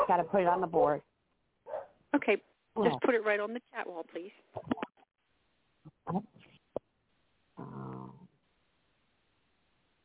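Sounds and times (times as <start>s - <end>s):
speech: 0.1s - 1.1s, 2.1s - 4.8s, 6.1s - 6.4s
several dogs barking after being put to bed: 1.7s - 2.0s.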